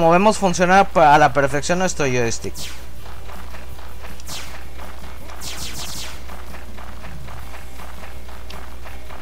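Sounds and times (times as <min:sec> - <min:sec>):
speech: 0:00.0 - 0:02.8
video game character running footsteps: 0:02.8 - 0:09.1.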